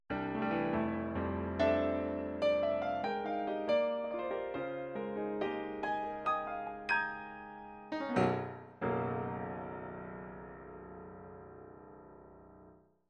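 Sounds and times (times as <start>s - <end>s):
synthesizer piano: 0.1s - 12.8s.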